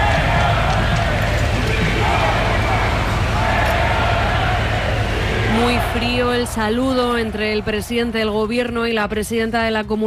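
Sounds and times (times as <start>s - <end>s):
large crowd booing and shouting insults: 0.0s - 8.7s
speech: 6.0s - 10.0s.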